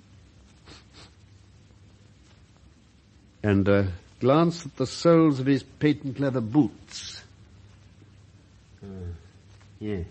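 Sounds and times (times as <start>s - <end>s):
faint low hum: 0.0s - 10.0s
soft sniffs at a dead man's lips: 0.5s - 1.3s
speech: 3.4s - 7.2s, 9.8s - 10.0s.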